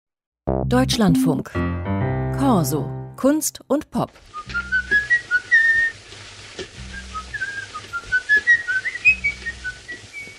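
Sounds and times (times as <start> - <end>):
speech: 0.7 - 5.0
person whistling a tune in a 1931 film scene: 4.4 - 6.0, 6.9 - 10.3.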